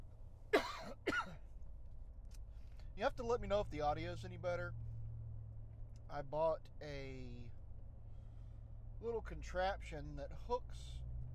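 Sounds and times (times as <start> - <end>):
faint hum: 0.0 - 11.3
harsh coughs: 0.6 - 1.4
speech: 3.0 - 4.8, 6.1 - 7.6, 9.0 - 11.1.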